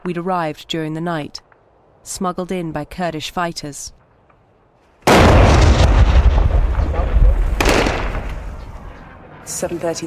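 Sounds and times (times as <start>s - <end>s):
speech: 0.0s - 4.0s, 9.5s - 10.0s
artillery explosions in a besieged city: 5.0s - 9.4s.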